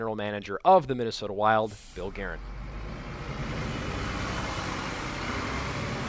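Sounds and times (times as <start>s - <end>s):
speech: 0.0s - 2.6s
bus engine rumbling as the bus pulls away: 1.7s - 6.0s.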